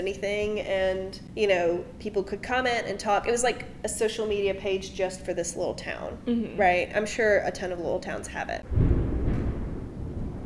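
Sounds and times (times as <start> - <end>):
speech: 0.0 - 8.8
thunder rumbling: 8.6 - 10.4.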